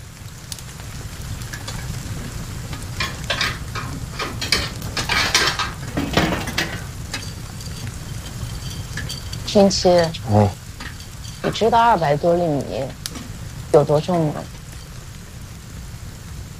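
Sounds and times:
fire in a stove crackling with a rough hiss: 0.0 - 16.5
stove poked to stoke the fire with metallic scrapes, clinks and knocks: 1.4 - 15.0
speech: 9.5 - 10.6, 11.4 - 13.0, 13.7 - 14.6.

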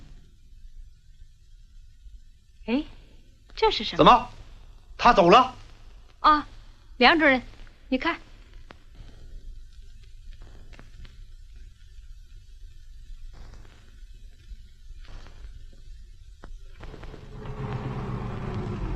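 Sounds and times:
speech: 2.7 - 2.9, 3.6 - 4.4, 5.0 - 5.6, 6.2 - 8.3
truck engine rumbling: 17.1 - 18.9.

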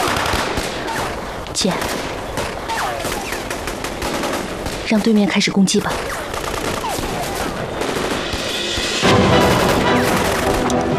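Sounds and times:
machine-gun squad firing sustained bursts: 0.0 - 10.9
speech: 1.6 - 2.0, 4.9 - 6.2.

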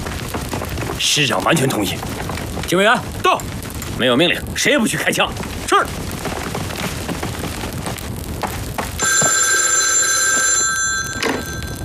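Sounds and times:
battle-like rumbling and crackling: 0.0 - 11.8
speech: 1.0 - 6.0
telephone ringing with a shrill electric bell tone: 9.0 - 11.8.

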